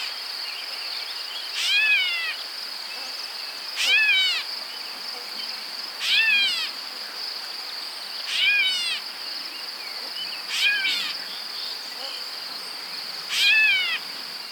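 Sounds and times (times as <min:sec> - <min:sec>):
Grey catbird Dumetella carolinensis mewing: 0:01.6 - 0:02.4, 0:03.8 - 0:04.4, 0:06.0 - 0:06.7, 0:08.3 - 0:09.0, 0:10.5 - 0:11.1, 0:13.3 - 0:14.0.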